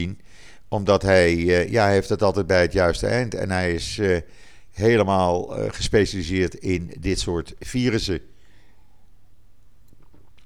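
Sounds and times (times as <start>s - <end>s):
speech: 0.0s - 8.3s
low hum: 0.0s - 10.4s
person sipping water: 9.9s - 10.4s.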